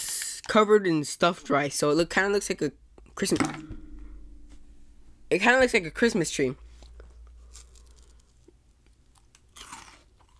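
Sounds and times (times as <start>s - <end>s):
speech: 0.5s - 3.8s, 5.3s - 6.6s
crunchy chewing of a crisp caramel rice treat covered in puffed rice: 6.8s - 10.3s.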